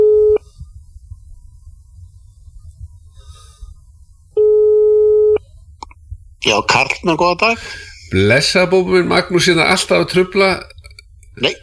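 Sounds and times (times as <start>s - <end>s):
telephone line beeps on a radio call-in: 0.0s - 0.4s, 4.4s - 5.4s
low hum: 0.0s - 11.6s
speech: 6.4s - 10.7s, 11.4s - 11.6s.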